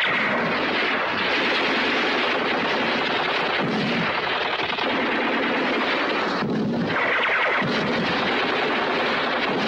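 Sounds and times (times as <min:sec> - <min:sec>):
booming blasts: 0:00.0 - 0:09.6
heavy gunfire from German soldiers across a flare-lit field: 0:00.0 - 0:09.6.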